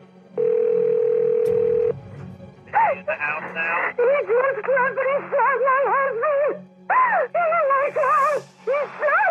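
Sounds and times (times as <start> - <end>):
telephone ringback tone: 0.3 - 2.0
speech: 3.1 - 9.2.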